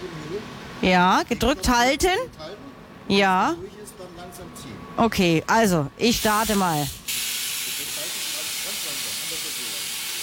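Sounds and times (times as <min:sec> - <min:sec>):
speech: 0:00.4 - 0:07.0
plasma cutter cutting through a metal stencil: 0:06.1 - 0:10.2.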